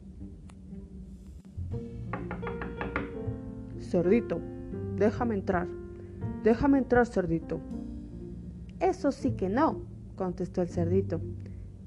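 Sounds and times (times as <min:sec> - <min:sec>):
firm knocks on a wooden door: 0:02.1 - 0:03.4
speech: 0:03.9 - 0:05.8, 0:06.4 - 0:07.8, 0:08.9 - 0:11.4.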